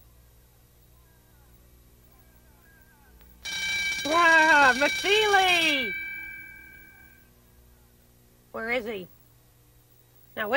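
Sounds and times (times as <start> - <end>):
faint room hum: 0.0 - 10.5
alarm clock ringing: 3.4 - 7.2
speech: 4.1 - 6.0, 8.6 - 9.2, 10.4 - 10.5.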